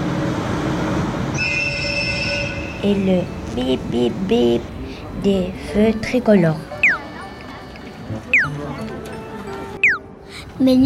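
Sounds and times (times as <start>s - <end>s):
high-speed train rail noise rumbling: 0.0s - 10.8s
high-speed train high-pitched whistle: 1.4s - 2.9s
speech: 2.8s - 6.7s, 10.6s - 10.8s.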